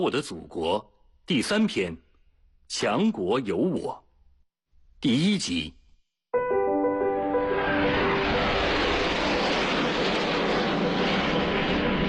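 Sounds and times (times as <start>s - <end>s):
speech: 0.0s - 2.0s, 2.7s - 4.0s, 5.0s - 5.8s
jet airplane engine roar: 7.3s - 12.0s.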